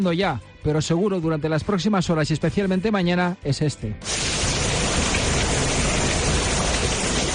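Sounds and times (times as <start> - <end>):
speech: 0.0 - 4.2
steady dense rainfall: 4.0 - 7.3.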